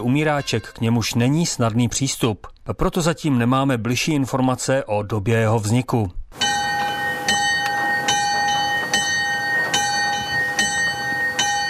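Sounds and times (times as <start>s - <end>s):
speech: 0.0s - 6.2s
church tower bell cast in 1616 in České Budějovice tolling: 6.4s - 11.6s.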